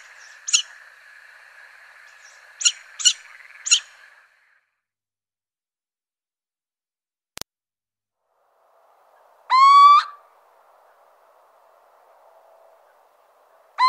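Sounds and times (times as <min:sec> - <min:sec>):
little owl whistled hoot: 0:09.5 - 0:10.2.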